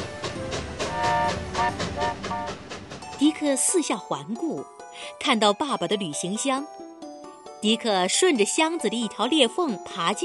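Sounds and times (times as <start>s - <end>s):
train clattering along the rails: 0.0s - 4.3s
speech: 3.2s - 6.8s, 7.6s - 10.2s.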